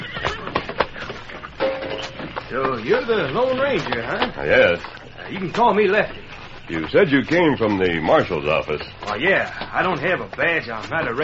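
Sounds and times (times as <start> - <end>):
horse whinnying: 0.0 - 1.1
faint shuffling: 0.0 - 11.2
speech: 2.5 - 11.2.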